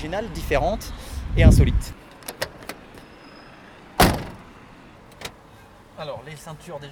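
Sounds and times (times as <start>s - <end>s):
speech: 0.1s - 2.0s, 6.0s - 6.9s
quiet car cabin ambience: 2.1s - 3.1s, 4.0s - 5.8s
1963 Peugeot 404 car door shutting with a solid thunk: 2.2s - 3.0s, 4.0s - 5.4s
faint handling clicks of a 1963 Peugeot 404 car door: 2.2s - 3.0s, 4.0s - 4.4s.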